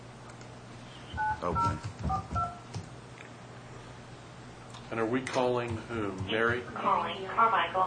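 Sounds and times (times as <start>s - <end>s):
telephone keypad tones entering an account code on a phone system: 1.2s - 2.7s
speech: 1.4s - 2.4s, 4.9s - 7.8s.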